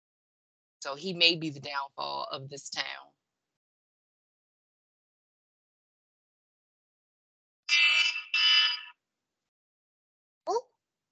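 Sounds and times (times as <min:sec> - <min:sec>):
speech: 0:00.8 - 0:03.2
alarm blaring: 0:07.7 - 0:09.0.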